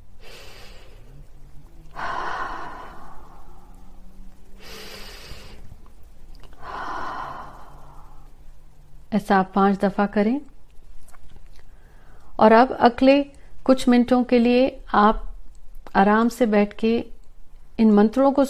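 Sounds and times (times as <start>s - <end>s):
low steady drone: 0.0s - 10.4s
deep breathing in through the nose and out through the mouth: 0.1s - 5.8s, 6.5s - 8.7s, 11.6s - 12.4s
speech: 9.2s - 10.5s, 12.4s - 15.3s, 16.0s - 17.1s, 17.8s - 18.4s.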